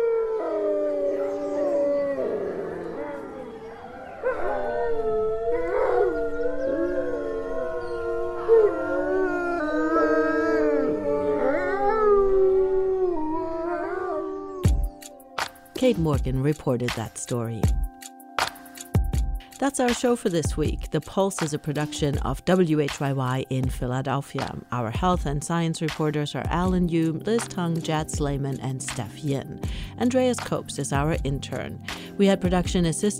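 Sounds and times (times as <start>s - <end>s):
pack of wolves howling in chorus: 0.0s - 15.3s
speech: 15.9s - 17.8s, 19.6s - 33.1s.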